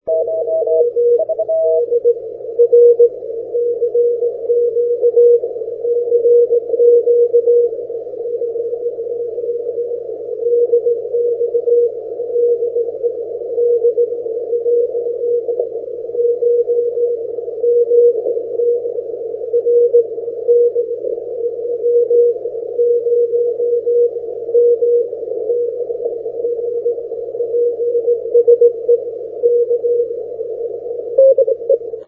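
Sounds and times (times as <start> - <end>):
80m CW morse code radio signal: 0.1 - 32.0.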